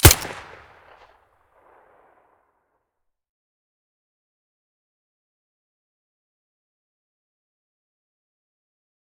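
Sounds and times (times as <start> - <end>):
fiveseven weapon firing with silencer: 0.0 - 0.9.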